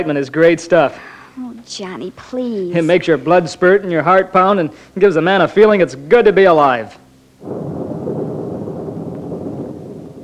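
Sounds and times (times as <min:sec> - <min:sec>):
speech: 0:00.0 - 0:07.7
thunder rumbling before a storm: 0:07.4 - 0:10.2.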